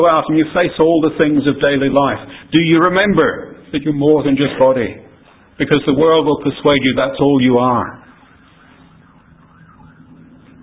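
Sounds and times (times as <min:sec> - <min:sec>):
speech: 0:00.0 - 0:05.0, 0:05.6 - 0:08.0
low rumble of city traffic: 0:00.0 - 0:10.6
emergency siren wailing: 0:07.7 - 0:10.6.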